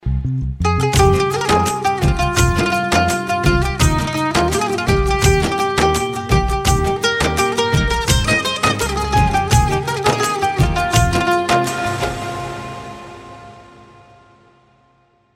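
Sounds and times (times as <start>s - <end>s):
sweet guitar: 0.6s - 13.5s.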